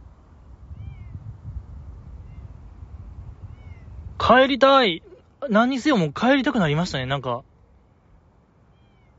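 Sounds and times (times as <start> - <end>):
steady low outdoor rumble: 0.0 - 9.1
cat meowing on a dark riverbank at night in winter: 3.5 - 3.9, 8.7 - 9.1
speech: 4.3 - 7.5.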